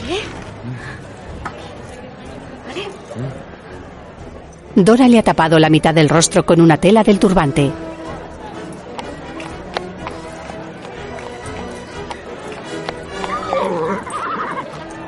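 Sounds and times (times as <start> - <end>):
faint murmuring voices: 0.0 - 4.8, 7.8 - 15.0
speech: 0.1 - 1.1, 4.8 - 7.8
hoof clops: 7.9 - 15.0
horse whinnying: 13.2 - 15.0.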